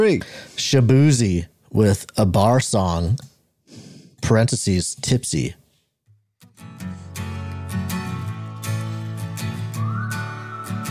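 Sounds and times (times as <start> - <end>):
speech: 0.0 - 5.6
whistled melody: 9.5 - 10.8.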